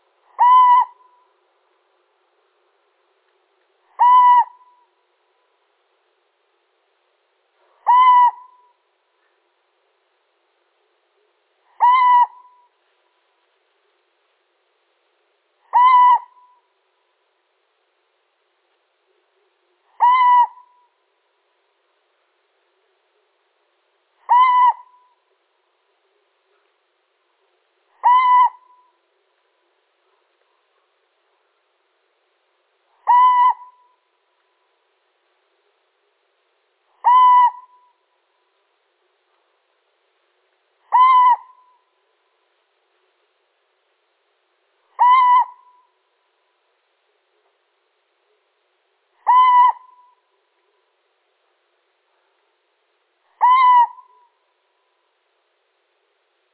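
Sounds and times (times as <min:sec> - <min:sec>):
male little owl calling: 0:00.3 - 0:01.3, 0:03.9 - 0:04.9, 0:07.8 - 0:08.8, 0:11.7 - 0:12.8, 0:15.6 - 0:16.7, 0:19.9 - 0:21.0, 0:24.2 - 0:25.3, 0:27.9 - 0:29.0, 0:32.9 - 0:34.1, 0:36.9 - 0:38.0, 0:40.8 - 0:42.0, 0:44.9 - 0:46.0, 0:49.2 - 0:50.4, 0:53.3 - 0:54.4.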